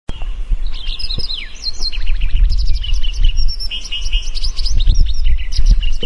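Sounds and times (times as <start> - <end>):
White-browed Wagtail sharp high chirps and downslurred calls: 0.1 - 6.0
steady low rumble: 0.1 - 6.0.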